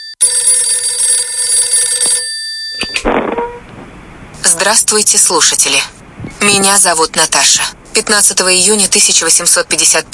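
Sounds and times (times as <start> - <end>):
telephone ringing with electronic trill: 0.0 - 3.0
speech: 4.5 - 10.1.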